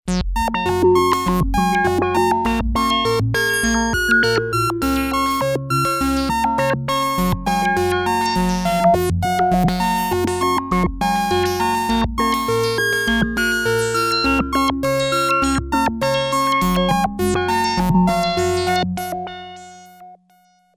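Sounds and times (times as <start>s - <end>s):
synth filter modulated by a random LFO: 0.1s - 19.8s.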